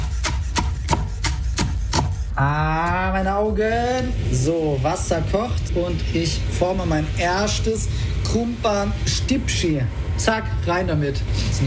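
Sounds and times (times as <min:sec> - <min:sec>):
knife chopping leek and onions on a board: 0:00.0 - 0:02.2
constant low rumble: 0:02.3 - 0:11.6
speech: 0:02.4 - 0:11.6.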